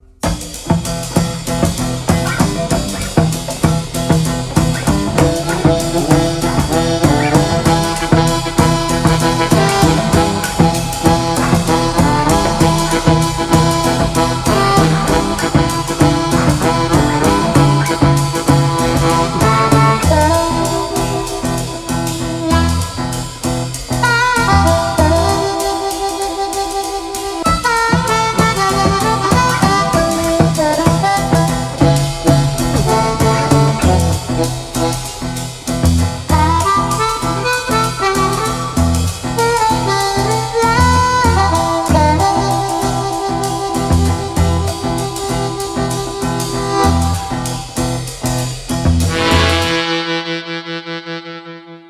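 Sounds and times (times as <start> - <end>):
cajon blues jam: 0.1 - 50.0.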